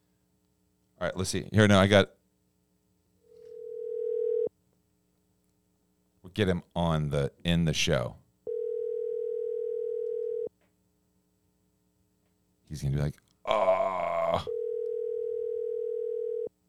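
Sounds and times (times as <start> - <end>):
speech: 1.0 - 2.2, 6.4 - 8.2, 12.7 - 13.6, 14.3 - 14.5
outgoing phone call ringback tone: 3.4 - 4.5, 8.5 - 10.5, 14.5 - 16.5.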